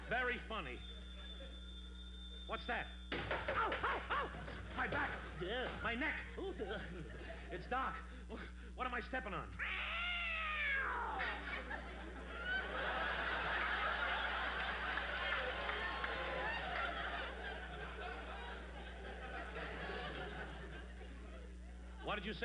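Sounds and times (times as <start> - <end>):
speech: 0.1 - 1.0, 2.5 - 9.9, 10.8 - 13.4, 22.0 - 22.4
laughter: 3.2 - 7.7, 11.1 - 22.4
cat yowling: 9.6 - 11.4.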